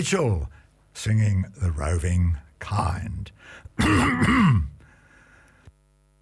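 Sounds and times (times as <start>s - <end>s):
speech: 0.0s - 4.7s
man clearing his throat: 3.8s - 4.8s.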